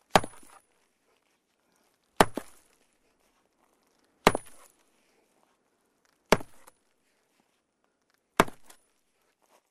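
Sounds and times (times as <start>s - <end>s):
hammer chipping stone: 0.1s - 0.6s, 2.2s - 2.7s, 4.2s - 4.7s, 6.3s - 6.8s, 8.4s - 8.9s.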